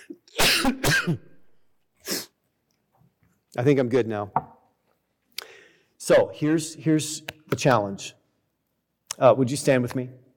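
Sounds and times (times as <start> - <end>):
person coughing harshly: 0.0 - 1.4
speech: 0.6 - 1.3, 3.6 - 4.5, 6.0 - 8.2, 9.2 - 10.2.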